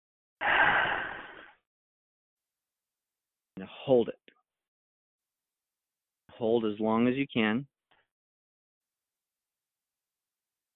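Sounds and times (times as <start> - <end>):
long forceful exhale during a breath-hold exercise: 0.4 - 1.6
speech: 3.6 - 4.2, 6.4 - 7.7.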